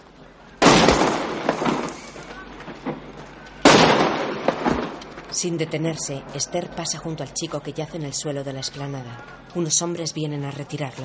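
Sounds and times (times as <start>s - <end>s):
gunshots striking the ground on an esplanade: 0.6s - 6.1s
speech: 5.4s - 11.0s.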